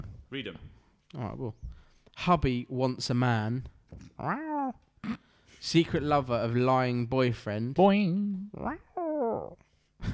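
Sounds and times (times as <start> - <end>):
speech: 0.3 - 10.1
person imitating a cat meow: 4.2 - 4.8, 8.2 - 9.6.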